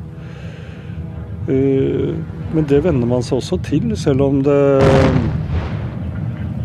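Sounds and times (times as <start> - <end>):
speech: 1.5 - 5.4
heavy explosion from a bombardment: 4.7 - 6.4.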